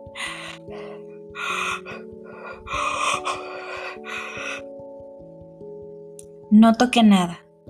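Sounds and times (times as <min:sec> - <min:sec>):
labored gasping breaths: 0:00.1 - 0:04.9
speech: 0:00.2 - 0:03.4, 0:06.5 - 0:07.4.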